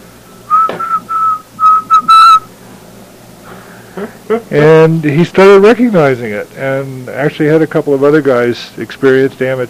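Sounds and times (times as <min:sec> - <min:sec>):
whistled Morse code for okay: 0:00.5 - 0:02.5
speech: 0:04.0 - 0:09.6.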